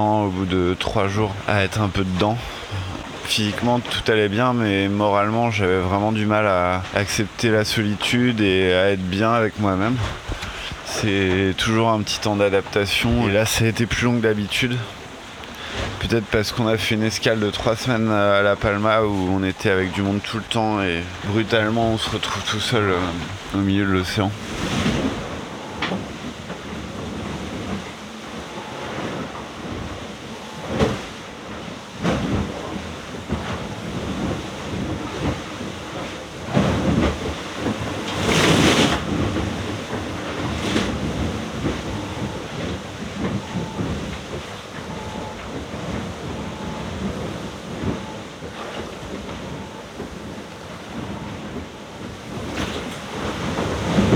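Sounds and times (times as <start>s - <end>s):
speech: 0.0s - 2.7s, 3.3s - 10.4s, 11.0s - 15.0s, 16.0s - 24.9s
heavy sea waves crashing against the hull of a sailboat on the ocean: 0.0s - 54.1s.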